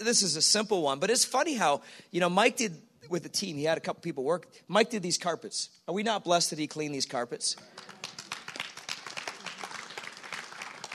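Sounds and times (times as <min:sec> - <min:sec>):
speech: 0:00.0 - 0:08.2
crowd clapping: 0:07.6 - 0:10.9.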